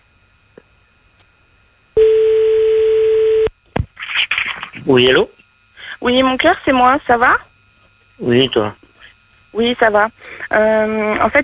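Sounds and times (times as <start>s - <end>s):
telephone tone while placing a call: 2.0s - 3.5s
speech: 4.9s - 5.4s, 6.0s - 7.5s, 8.2s - 8.8s, 9.5s - 11.4s.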